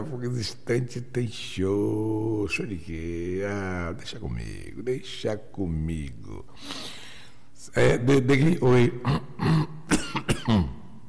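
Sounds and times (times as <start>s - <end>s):
speech: 0.0s - 7.0s, 7.6s - 9.8s, 10.5s - 10.7s
person coughing and clearing throat: 9.0s - 10.9s.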